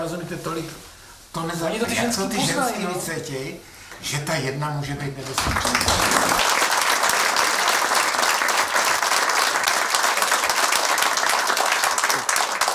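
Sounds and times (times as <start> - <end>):
speech: 0.0 - 6.4
large audience applauding: 5.2 - 12.7.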